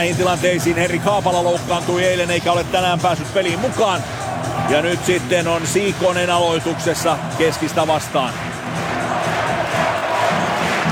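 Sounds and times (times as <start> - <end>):
speech: 0.0 - 8.5
ice hockey crowd cheering at a game: 3.4 - 10.9.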